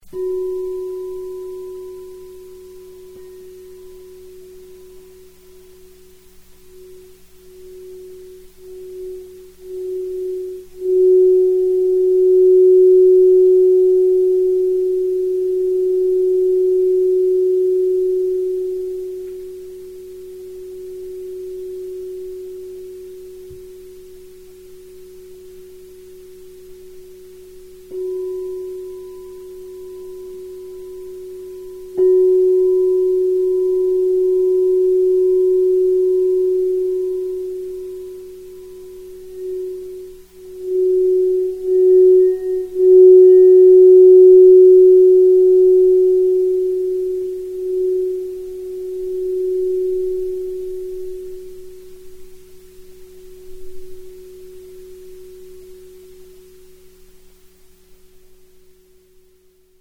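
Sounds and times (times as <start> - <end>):
singing bowl ringing in F: 0.0 - 57.4.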